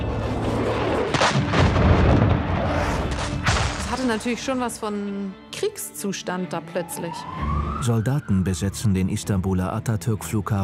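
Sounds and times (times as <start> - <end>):
heavy explosive booms from low-flying F-16 jets: 0.7 - 3.8
speech: 4.1 - 10.6.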